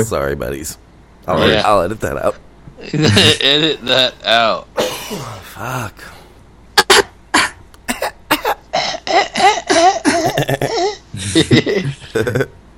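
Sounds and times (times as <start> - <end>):
speech: 0.0 - 6.1, 9.8 - 12.6
coughing fit with hacking wheezy coughs: 4.8 - 5.6, 6.8 - 10.9.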